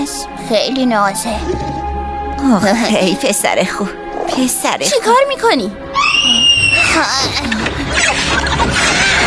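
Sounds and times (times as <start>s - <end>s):
speech: 0.1s - 9.1s
person screaming loudly and shrilly: 6.0s - 7.3s.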